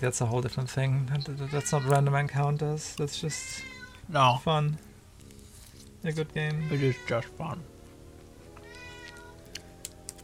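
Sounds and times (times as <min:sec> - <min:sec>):
speech: 0:00.0 - 0:04.9, 0:06.0 - 0:07.7
video game cat meowing: 0:01.4 - 0:01.9, 0:03.4 - 0:04.0, 0:06.5 - 0:07.3, 0:08.6 - 0:09.5
steady game music: 0:04.0 - 0:10.2.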